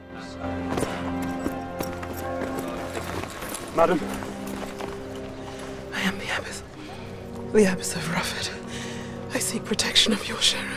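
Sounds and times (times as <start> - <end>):
droning tonal background: 0.0 - 10.7
black horse's hooves clip-clopping on a pathway: 0.7 - 5.8
speech: 3.8 - 4.3, 7.5 - 8.6, 9.5 - 10.7.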